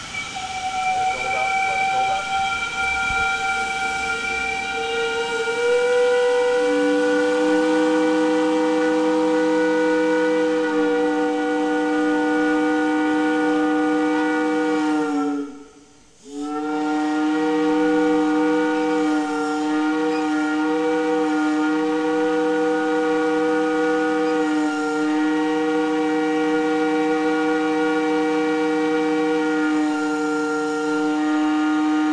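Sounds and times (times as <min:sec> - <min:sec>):
factory steam whistle blowing: 0:00.0 - 0:32.1.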